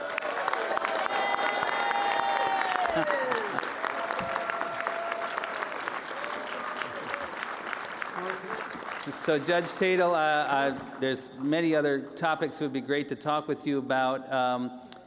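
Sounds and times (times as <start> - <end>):
convention audience applause: 0.0 - 11.8
speech: 2.9 - 3.3, 9.2 - 14.9.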